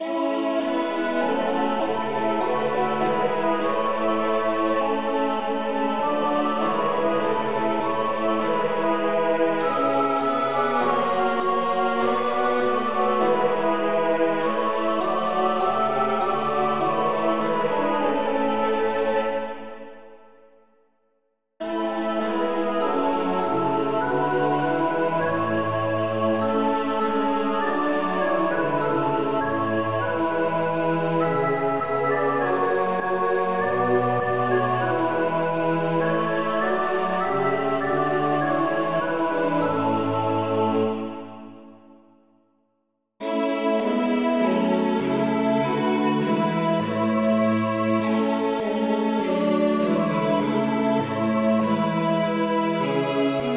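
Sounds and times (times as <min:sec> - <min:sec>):
hymn music: 0:00.0 - 0:20.4, 0:21.6 - 0:42.1, 0:43.2 - 0:53.5.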